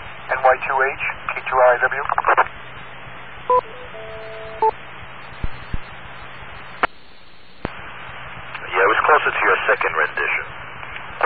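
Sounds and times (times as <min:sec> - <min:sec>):
steady radio hiss: 0:00.0 - 0:02.5, 0:05.2 - 0:11.2
speech: 0:00.5 - 0:02.4, 0:03.5 - 0:04.8
short electronic dial-tone beeps: 0:03.5 - 0:05.9.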